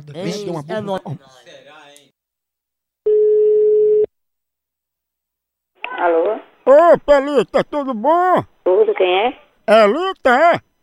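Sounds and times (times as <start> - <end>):
speech: 0.0 - 1.8, 6.0 - 10.8
ringing tone of an outgoing telephone call: 3.0 - 4.1.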